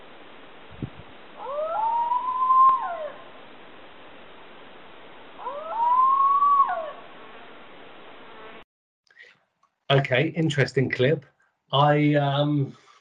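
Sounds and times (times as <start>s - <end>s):
dingo howling: 1.4s - 3.3s, 5.4s - 7.0s
speech: 9.9s - 12.8s.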